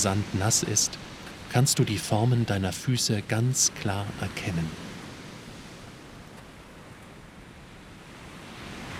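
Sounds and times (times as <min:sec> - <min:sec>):
speech: 0:00.0 - 0:04.9
small ocean waves rolling onto a sandy beach: 0:00.0 - 0:08.9.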